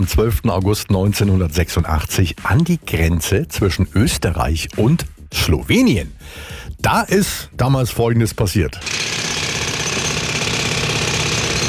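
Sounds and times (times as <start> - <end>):
speech: 0.0 - 9.2
jackhammer pounding at tunnel construction on the Austria Slovenia border: 8.8 - 11.6.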